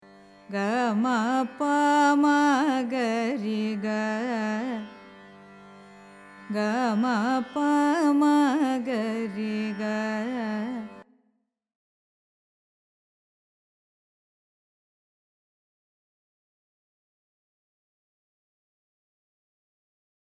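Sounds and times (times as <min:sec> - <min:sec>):
carnatic music in raga ananda bhairavi: 0:00.0 - 0:11.0.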